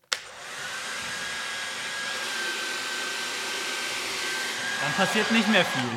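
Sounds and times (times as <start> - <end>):
hair dryer switch click: 0.1 - 0.6
hair dryer blowing with a faint high whine: 0.1 - 5.9
speech: 4.8 - 5.9.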